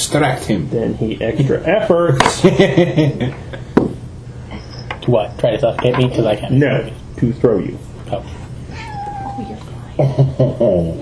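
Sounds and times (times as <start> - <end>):
speech: 0.0 - 3.7, 5.1 - 8.4, 10.0 - 11.0
cat meowing in protest: 8.7 - 9.8.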